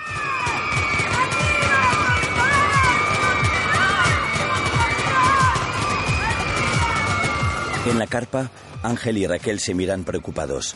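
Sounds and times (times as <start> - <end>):
group of hostages screaming and shrieking: 0.0 - 8.3
speech: 7.9 - 10.7.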